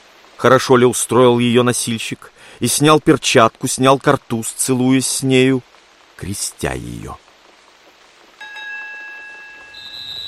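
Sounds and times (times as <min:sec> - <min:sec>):
speech: 0:00.4 - 0:07.2
railway station third departure bell ringing: 0:08.4 - 0:10.2.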